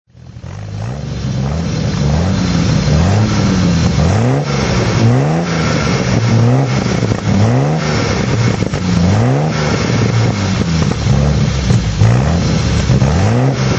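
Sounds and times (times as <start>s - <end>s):
TR6 SU throttle: 0.1s - 13.7s.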